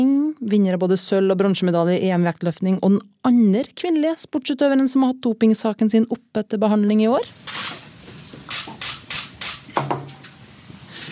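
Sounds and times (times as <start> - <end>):
speech: 0.0 - 7.6
press cameras clicking at a weightlifter's press conference: 7.4 - 7.8, 8.5 - 9.7.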